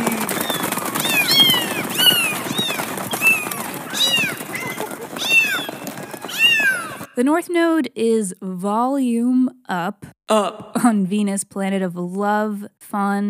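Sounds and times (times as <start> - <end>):
busy rustling background: 0.0 - 7.1
chorus of kittens meowing: 0.2 - 7.1
speech: 7.2 - 13.2.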